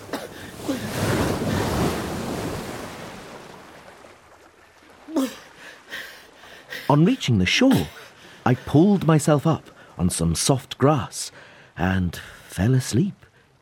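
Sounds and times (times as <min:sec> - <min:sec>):
big ocean wave surging and crashing: 0:00.0 - 0:03.8
gusting wind: 0:00.0 - 0:03.8
short sharp water splashes: 0:00.0 - 0:06.9
speech: 0:06.9 - 0:13.3.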